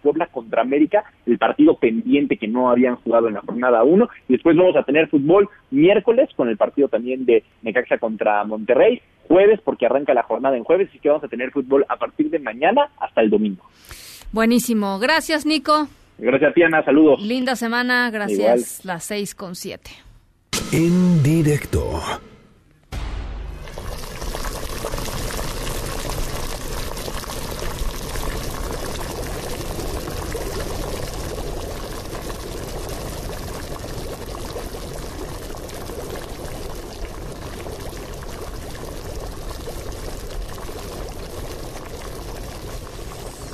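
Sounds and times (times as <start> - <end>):
speech: 0.1 - 22.3
water boiling in a pot: 23.6 - 43.5.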